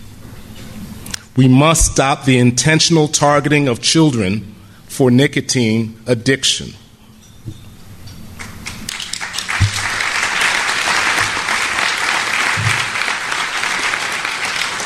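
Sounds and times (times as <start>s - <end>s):
speech: 1.4s - 6.8s
large audience applause: 8.4s - 14.8s.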